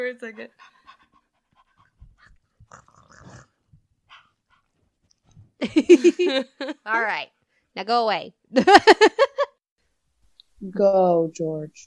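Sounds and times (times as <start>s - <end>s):
speech: 0.0s - 0.9s, 5.6s - 9.4s, 10.6s - 11.8s
dog panting: 0.3s - 2.8s, 4.0s - 5.4s.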